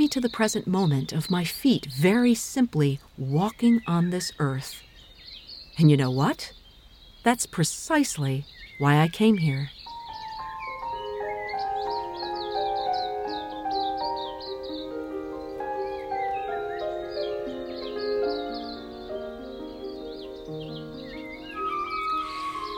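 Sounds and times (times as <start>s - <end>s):
speech: 0.1s - 4.9s, 5.8s - 6.6s, 7.2s - 9.8s
gentle flute melody: 9.9s - 22.7s
piano accompaniment: 9.9s - 22.7s.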